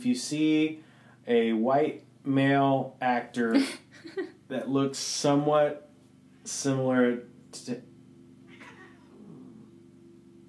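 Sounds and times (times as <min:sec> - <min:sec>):
speech: 0:00.0 - 0:05.8, 0:06.4 - 0:07.9
steady low hum: 0:00.0 - 0:10.4
cats yowling and screeching: 0:08.5 - 0:09.3.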